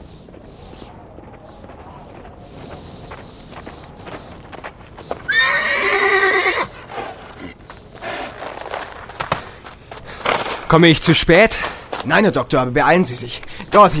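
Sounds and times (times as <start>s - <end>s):
bay horse hooves clip-clopping at a brisk trot: 0.0s - 12.6s
bay horse giving a loud shrill whinny: 5.3s - 8.9s
speech: 10.7s - 13.9s.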